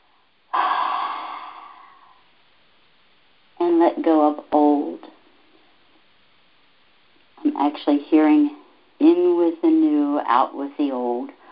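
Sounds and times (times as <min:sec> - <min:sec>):
deep breath: 0:00.5 - 0:02.3
speech: 0:03.9 - 0:05.1, 0:07.7 - 0:11.4.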